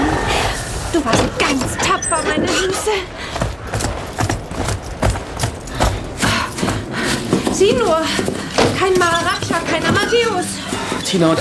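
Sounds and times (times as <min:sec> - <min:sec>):
speech: 0:00.9 - 0:03.4, 0:07.6 - 0:11.3
horses walking into a stable, hooves clip-clopping: 0:03.1 - 0:11.3.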